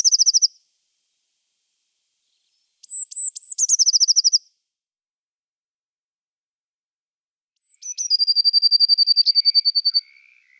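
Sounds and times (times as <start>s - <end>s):
Eurasian blue tit (Parus caeruleus) singing: 0.0s - 0.6s, 2.8s - 4.5s, 7.6s - 10.5s.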